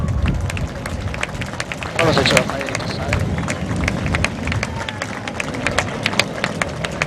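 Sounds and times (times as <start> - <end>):
large outdoor crowd applauding: 0.0 - 7.0
speech: 2.0 - 2.6.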